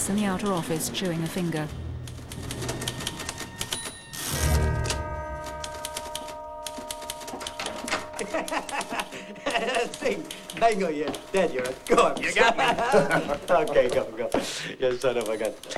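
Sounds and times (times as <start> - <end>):
secretary typing on a typewriter: 0.0 - 15.7
speech: 0.1 - 1.8, 9.7 - 15.7
faint sustained tone: 1.8 - 13.8
laughter: 7.6 - 15.7.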